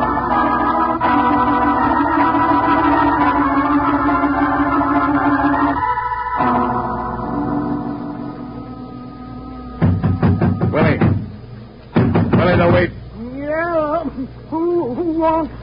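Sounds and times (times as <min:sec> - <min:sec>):
low steady hum: 0:00.0 - 0:15.6
knocking on a wooden shanty door at the waterfront: 0:12.0 - 0:12.9.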